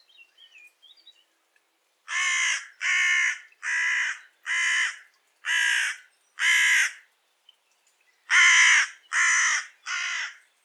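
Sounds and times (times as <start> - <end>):
carrion crow (Corvus corone) giving harsh broad caws: 2.1 - 7.0, 8.3 - 10.4.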